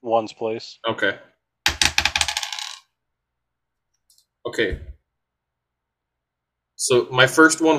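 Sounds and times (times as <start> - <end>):
speech: 0.1 - 1.3, 4.5 - 4.9, 6.8 - 7.7
two ten-sided dice clattering across a hard surface: 1.7 - 2.9.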